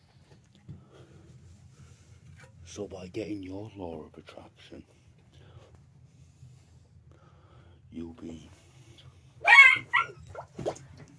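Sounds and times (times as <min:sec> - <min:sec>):
faint low steady hum: 0:00.0 - 0:11.1
speech: 0:02.7 - 0:05.0, 0:08.0 - 0:08.6
dog barking: 0:09.4 - 0:10.5.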